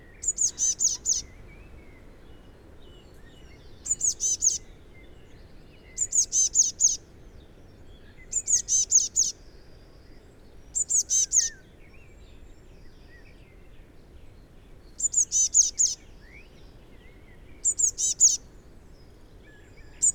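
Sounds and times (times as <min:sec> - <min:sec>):
faint low background noise: 0:00.0 - 0:20.1
Eurasian blue tit Cyanistes caeruleus calling: 0:00.2 - 0:01.4, 0:03.8 - 0:04.7, 0:06.0 - 0:07.0, 0:08.3 - 0:09.4, 0:10.8 - 0:11.6, 0:15.0 - 0:16.0, 0:17.6 - 0:18.4.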